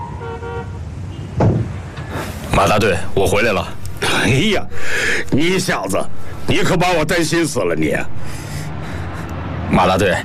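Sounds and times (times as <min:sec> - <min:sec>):
car horn toots: 0:00.1 - 0:01.4
speech: 0:02.6 - 0:08.4, 0:09.7 - 0:10.2.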